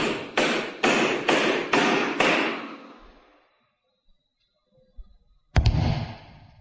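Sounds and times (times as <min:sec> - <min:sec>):
hammer driving nails into lid of coffin-shaped wooden box filled with earth: 0:00.0 - 0:02.8.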